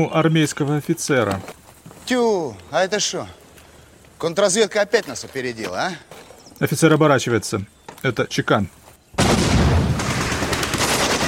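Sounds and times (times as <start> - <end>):
speech: 0.0 - 3.4, 4.2 - 9.2
gunfire barrage from a ruined building in a shootout: 9.2 - 11.2.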